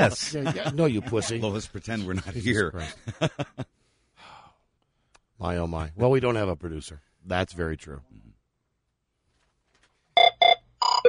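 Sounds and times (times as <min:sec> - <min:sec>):
laughter: 0:00.0 - 0:03.7
speech: 0:00.0 - 0:03.7, 0:05.4 - 0:08.3
telephone ringing in short electronic bursts: 0:10.2 - 0:11.0.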